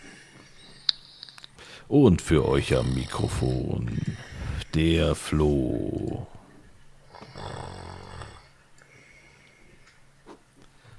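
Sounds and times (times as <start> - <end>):
soft breathy sounds: 0.0 - 10.0
speech: 1.9 - 6.4
rasping snore: 2.3 - 4.7, 7.1 - 8.5.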